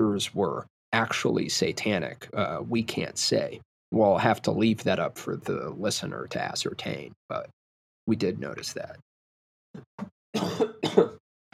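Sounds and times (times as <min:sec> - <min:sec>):
speech: 0:00.2 - 0:09.1, 0:09.7 - 0:11.2
person coughing from something caught in the throat: 0:10.4 - 0:11.2.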